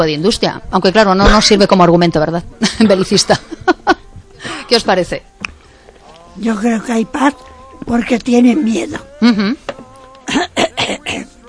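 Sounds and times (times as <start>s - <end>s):
speech: 0.0s - 5.6s, 6.4s - 11.4s
harsh coughing: 10.3s - 11.3s
throat clearing: 10.3s - 11.3s.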